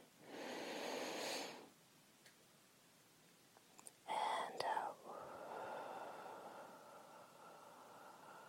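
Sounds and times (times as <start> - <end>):
slow deep breath of someone being coached to calm down: 0.2 - 1.8, 4.2 - 8.4.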